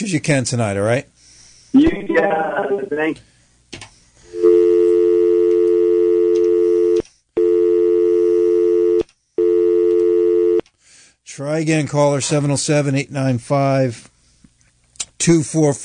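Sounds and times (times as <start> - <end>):
speech: 0.0 - 3.3, 11.4 - 14.1, 15.2 - 15.8
loud telephone dial tone on a phone line: 4.4 - 10.6.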